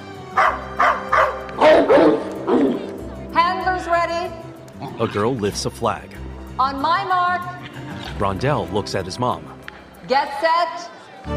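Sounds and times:
dogs barking at a dog agility race: 0.3 - 3.3, 7.5 - 8.3
speech: 5.0 - 11.3.

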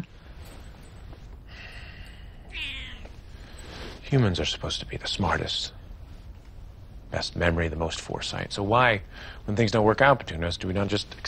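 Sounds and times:
low hum: 0.0 - 11.2
cat meowing in greeting at home: 2.5 - 3.2
speech: 4.1 - 5.8, 7.1 - 11.2.

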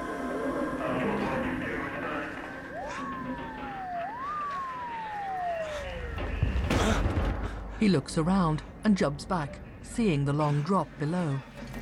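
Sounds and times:
police car sirens wailing in rising-and-falling sweeps: 0.1 - 7.2
speech: 7.8 - 11.5.

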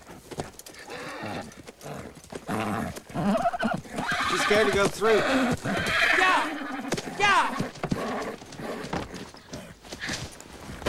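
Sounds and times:
black Mustang mare hooves clip-clopping at a corral gate: 0.0 - 10.8
scuffling and movement noise: 4.3 - 10.8
speech: 4.5 - 6.0.

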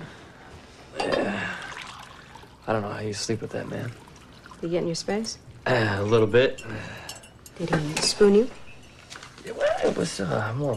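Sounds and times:
coffee being poured into a cup: 1.1 - 5.0
speech: 2.7 - 4.0, 4.6 - 7.0, 7.6 - 8.6, 9.4 - 10.7.

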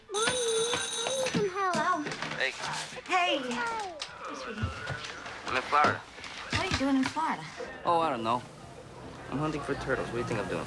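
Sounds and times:
telephone ringing in a family home on a snowy day: 0.0 - 2.2
speech: 2.5 - 4.8, 5.5 - 6.1, 6.8 - 8.5, 9.3 - 10.6.

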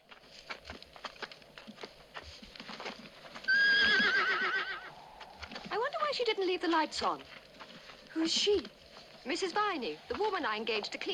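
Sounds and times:
horse hooves clopping as it is pulled up: 0.0 - 11.1
horse whinnying: 3.5 - 5.0
speech: 6.3 - 7.4, 8.2 - 11.1.

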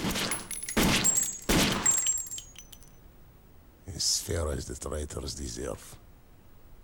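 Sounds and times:
handgun gunshots at range: 0.0 - 2.2
faint ringing background: 0.3 - 3.6
speech: 4.0 - 6.0.

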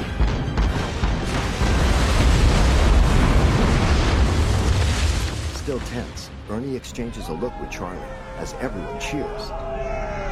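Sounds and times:
bombs dropped from an aircraft exploding in the sea: 0.0 - 6.3
speech: 6.5 - 10.2.

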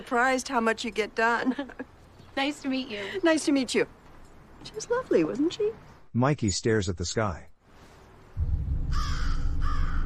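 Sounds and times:
speech: 0.0 - 4.0, 4.6 - 7.5
steady low rumble: 8.4 - 10.0
raven cawing from a telephone wire on a foggy day: 8.6 - 10.0.

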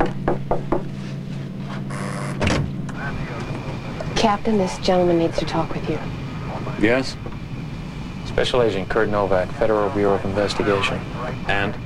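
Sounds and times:
knocking on a door: 0.0 - 0.9
low engine-like hum: 0.0 - 11.8
speech: 4.2 - 6.2, 6.8 - 7.4, 8.4 - 11.8.

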